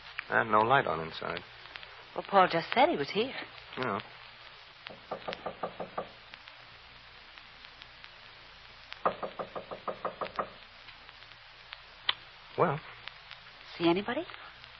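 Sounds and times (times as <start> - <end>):
room hiss: 0.0 - 14.7
speech: 0.3 - 1.6, 2.2 - 4.2, 12.6 - 12.9, 13.8 - 14.4
knocking on a door: 4.9 - 6.2, 9.0 - 10.6.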